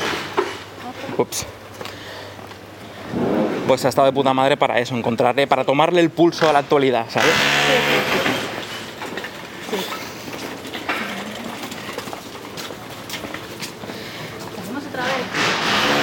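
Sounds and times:
speech: 0:01.1 - 0:01.6, 0:03.7 - 0:08.6
tram rolling past with wheels clattering on rails: 0:07.2 - 0:16.0.

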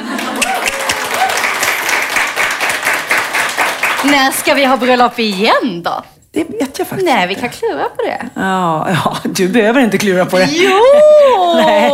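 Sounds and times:
live audience applause: 0:00.0 - 0:04.6
people whooping: 0:00.3 - 0:01.7, 0:10.4 - 0:11.9
speech: 0:04.0 - 0:11.9
laughter: 0:10.4 - 0:11.9.

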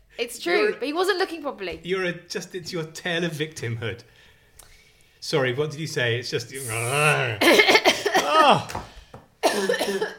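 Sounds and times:
speech: 0:00.2 - 0:04.2, 0:05.2 - 0:08.9, 0:09.5 - 0:10.1
loud uncovered cough with throaty rasping: 0:06.8 - 0:08.7, 0:09.4 - 0:10.1.

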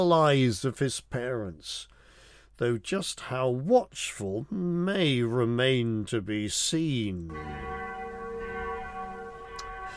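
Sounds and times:
speech: 0:00.0 - 0:01.9, 0:02.6 - 0:08.0
mission bell ringing: 0:07.3 - 0:09.9.

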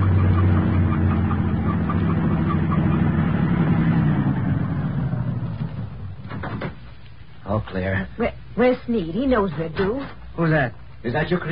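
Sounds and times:
truck with no headlights driving past: 0:00.0 - 0:06.4
speech: 0:07.8 - 0:11.5.

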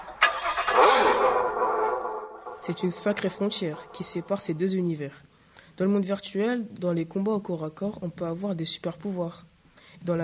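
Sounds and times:
car engine cranking, starting and running: 0:00.0 - 0:04.4
speech: 0:00.8 - 0:01.7, 0:02.6 - 0:10.2.

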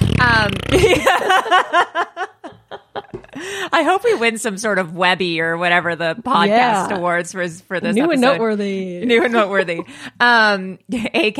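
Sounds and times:
loud vocal imitation of a fart: 0:00.0 - 0:01.1
speech: 0:00.5 - 0:02.3, 0:03.4 - 0:11.3
laughter: 0:00.7 - 0:03.6.

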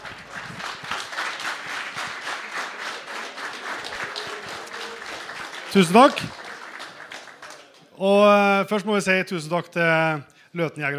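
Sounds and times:
audience applause welcoming guests on stage: 0:00.0 - 0:08.0
speech: 0:05.7 - 0:06.4, 0:08.0 - 0:10.9.

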